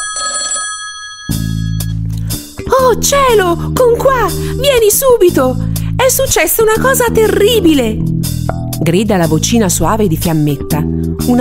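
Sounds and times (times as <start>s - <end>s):
telephone bell ringing: 0.0s - 2.0s
speech: 2.7s - 8.2s, 8.8s - 11.3s.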